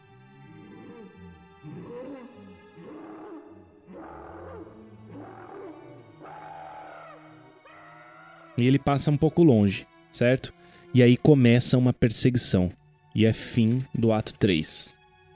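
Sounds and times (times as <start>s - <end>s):
running monstrous orc-like creature growling: 0.5s - 7.9s
speech: 8.6s - 15.0s.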